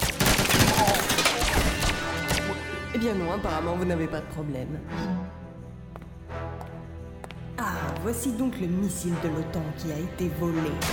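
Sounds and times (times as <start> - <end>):
gunfire as guards open fire: 0.0 - 2.6
speech: 3.0 - 5.2, 8.0 - 10.9.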